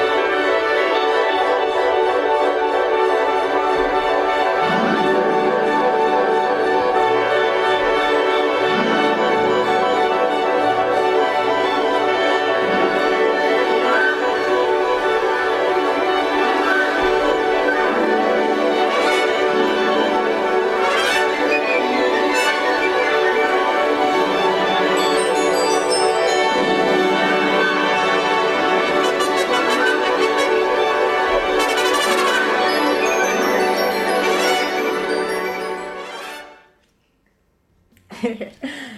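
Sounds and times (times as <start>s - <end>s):
lively festive carnival-like instrumental music: 0.0s - 36.9s
bright chiming small bells ringing: 25.0s - 27.1s.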